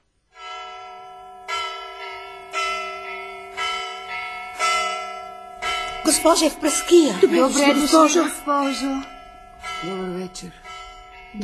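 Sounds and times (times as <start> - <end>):
large bell ringing to gather people: 0.4 - 11.4
speech: 6.1 - 9.1, 9.8 - 10.6
laughter: 6.8 - 8.5.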